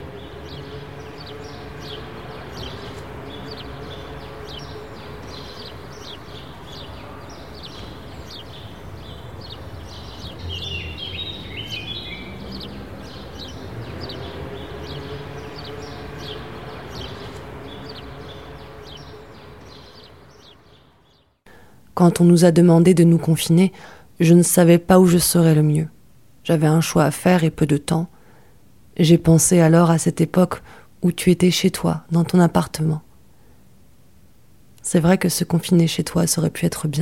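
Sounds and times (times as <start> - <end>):
birds chirping and singing among trees: 0.0 - 21.4
city noise: 0.0 - 36.9
speech: 22.0 - 28.2, 29.0 - 33.1, 34.8 - 36.9.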